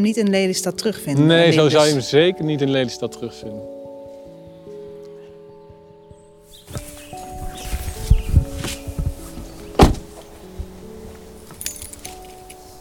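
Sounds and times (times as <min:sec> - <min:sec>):
speech: 0:00.0 - 0:03.8
keys jangling and clinking while locking a car: 0:11.5 - 0:12.7.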